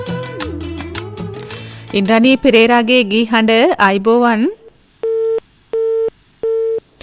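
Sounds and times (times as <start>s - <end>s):
speech: 2.0s - 4.6s
telephone busy tone after a disconnected call: 5.0s - 6.8s.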